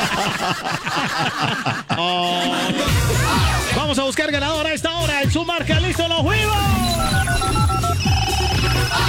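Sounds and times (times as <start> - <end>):
laughter: 0.0 - 3.8
speech: 0.2 - 7.7
busy loud music-like sound: 2.0 - 9.0
telephone ringing on an outgoing call to a prize winner: 6.6 - 9.0.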